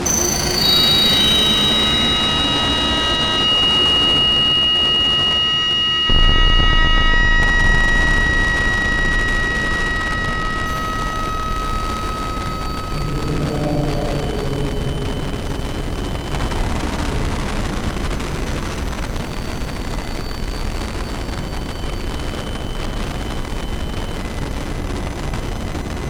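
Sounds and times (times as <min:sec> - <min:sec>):
beeps: 0:00.1 - 0:20.3
distortion static: 0:00.1 - 0:25.9.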